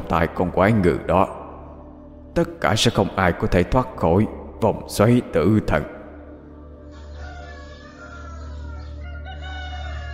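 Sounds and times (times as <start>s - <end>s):
speech: 0.1s - 1.4s, 2.4s - 6.0s
rooster crowing: 6.9s - 10.1s.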